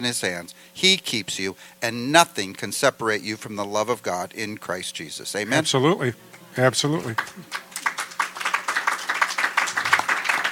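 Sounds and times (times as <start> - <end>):
speech: 0.0 - 7.6
small audience clapping politely: 7.0 - 10.5.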